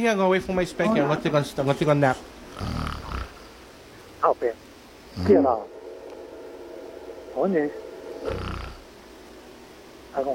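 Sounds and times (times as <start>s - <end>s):
speech: 0.0s - 3.0s, 4.2s - 5.7s, 7.4s - 8.4s, 10.2s - 10.3s
person imitating a snore: 2.6s - 3.4s.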